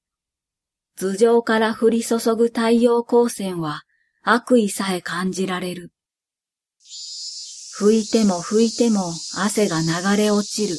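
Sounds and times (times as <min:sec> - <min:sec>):
speech: 0:01.0 - 0:06.0, 0:07.8 - 0:10.7
cicadas singing in park trees on a sticky midsummer day: 0:06.8 - 0:10.7.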